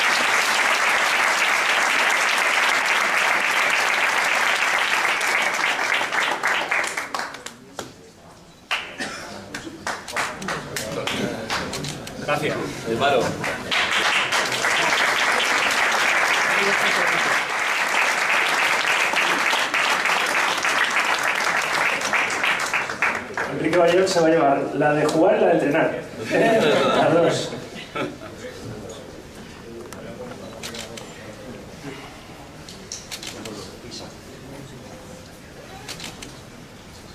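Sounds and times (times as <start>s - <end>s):
crowd applause: 0.0s - 7.7s, 9.8s - 11.8s, 13.0s - 24.0s
speech: 12.4s - 13.6s, 24.2s - 27.7s
laughter: 26.2s - 28.7s.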